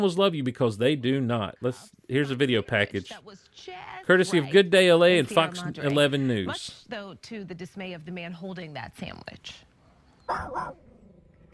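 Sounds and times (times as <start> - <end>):
speech: 0.0 - 9.7, 10.3 - 10.8
dog barking at a bear: 10.3 - 10.8.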